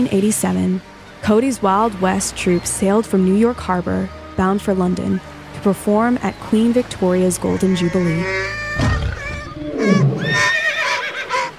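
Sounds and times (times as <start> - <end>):
speech: 0.0 - 8.6
horse neighing: 7.5 - 11.5.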